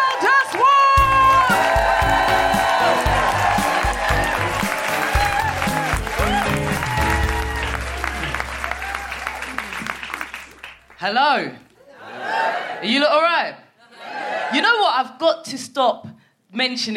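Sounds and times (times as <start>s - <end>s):
live comedy show audience clapping: 0.0s - 11.8s
speech: 11.0s - 11.6s, 12.8s - 13.6s, 14.5s - 16.9s.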